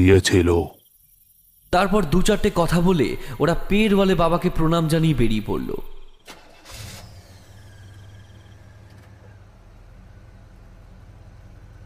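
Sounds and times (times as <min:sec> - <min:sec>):
speech: 0:00.0 - 0:00.8, 0:01.7 - 0:05.9
car engine cranking and catching: 0:05.0 - 0:11.8.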